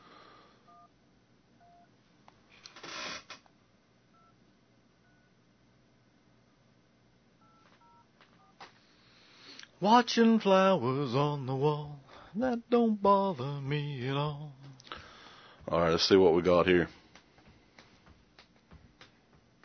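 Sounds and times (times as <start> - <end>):
hiss: 0.0 - 19.6
phone keypad beeps as a phone number is dialled: 7.4 - 8.6
speech: 9.8 - 14.6, 15.7 - 17.0.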